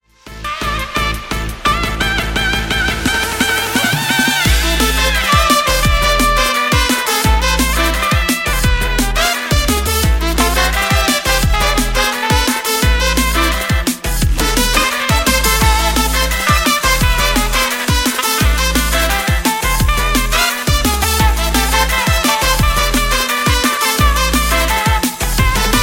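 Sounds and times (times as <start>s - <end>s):
solo saxophone: 0.2s - 25.8s.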